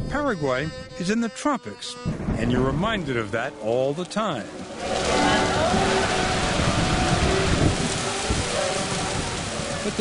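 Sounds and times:
speech: 0.1 - 5.8
heavy tropical downpour in Paraguay pounding surfaces: 2.1 - 9.9.

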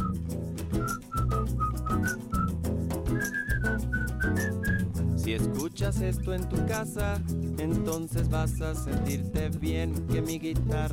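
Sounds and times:
whistled melody hook of a song: 0.0 - 5.0
speech: 5.3 - 10.9.

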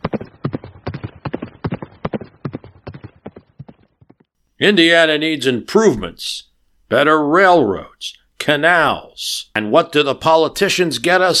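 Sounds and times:
ridden horse's hooves clip-clopping on a hard back road in Indiana: 0.0 - 4.3
speech: 4.6 - 11.3.

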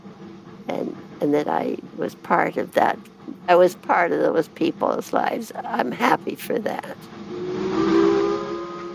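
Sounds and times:
speech: 1.2 - 7.2
steam train whistle blast: 7.2 - 8.9.

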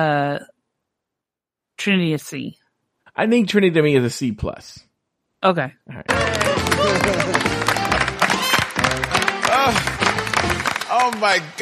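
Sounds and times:
speech: 0.0 - 0.5, 1.8 - 2.6, 3.2 - 8.2, 9.7 - 11.5
crowd laughing at a drag race roast: 6.1 - 10.8
crowd clapping at a drag race roast: 6.1 - 11.5.

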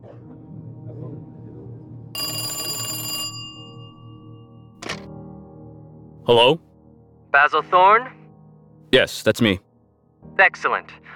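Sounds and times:
old-fashioned telephone bell ringing: 2.2 - 5.0
speech: 6.3 - 6.7, 7.3 - 8.2, 8.9 - 9.6, 10.4 - 11.1.

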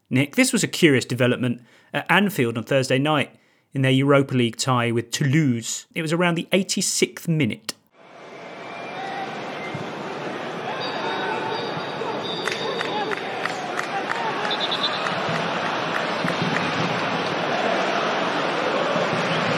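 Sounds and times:
speech: 0.1 - 7.8
large football stadium crowd roaring: 8.0 - 19.5
fan blowing shrill whistle in the stands: 8.1 - 17.2.

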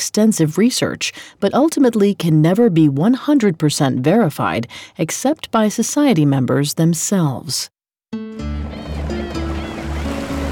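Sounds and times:
speech: 0.0 - 8.6
waves lapping around a boat on a foggy night: 8.6 - 10.4.

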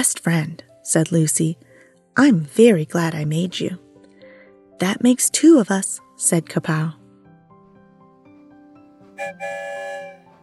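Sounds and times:
speech: 0.0 - 3.8, 4.8 - 7.0, 9.2 - 10.1
train whistle blasts: 9.2 - 10.4.

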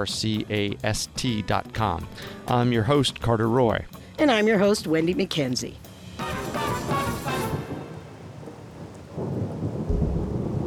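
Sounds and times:
speech: 0.0 - 5.8
steady heavy rain in a tropical thunderstorm: 5.9 - 10.6
deep rolling thunder in a tropical thunderstorm: 6.4 - 10.6.

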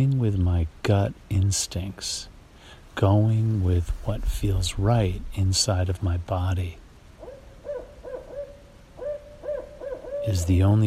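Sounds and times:
speech: 0.0 - 2.3, 3.0 - 6.8, 10.2 - 10.8
barred owls hooting at night in a driveway in New Hampshire: 7.2 - 10.8.

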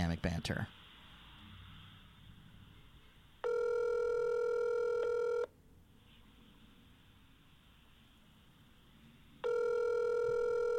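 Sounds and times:
electronic ringback tone of an outgoing phone call ringing unanswered: 3.4 - 5.5, 9.4 - 10.7.

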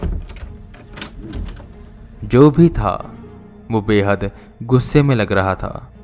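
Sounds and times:
bedroom door opening with latch clicks and wood knocks: 0.0 - 1.8
speech: 2.2 - 3.1, 3.7 - 5.9.

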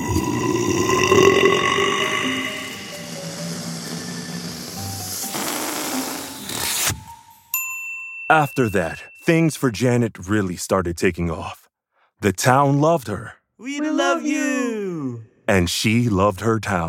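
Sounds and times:
loud rumbling burp from eating pancakes at a pancake eating contest: 0.0 - 3.7
speech: 8.3 - 11.6, 12.2 - 16.8.

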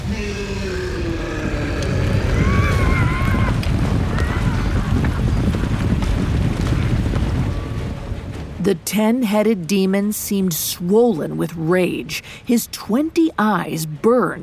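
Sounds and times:
windy roar: 0.0 - 12.5
whinny-like tones: 0.7 - 5.2
galloping hooves of a horse-drawn chariot: 0.8 - 11.3
rattling chariot wheels: 1.3 - 9.4
speech: 8.7 - 14.4.

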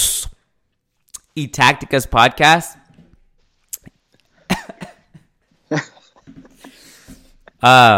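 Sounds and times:
speech: 1.3 - 2.7, 5.7 - 5.9, 7.6 - 7.9
man choking cough from throat seizing up: 4.5 - 5.3.

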